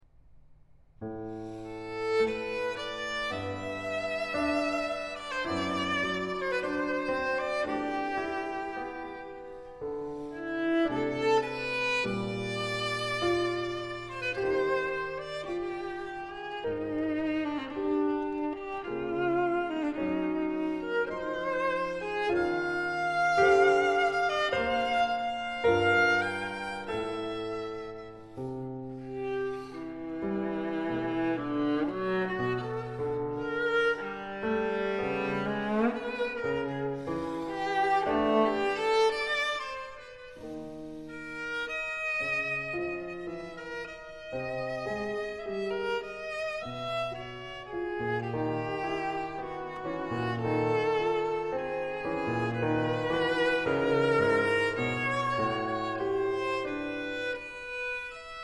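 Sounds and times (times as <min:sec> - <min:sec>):
viola and piano playing a slow sonata movement: 0:01.0 - 0:58.4.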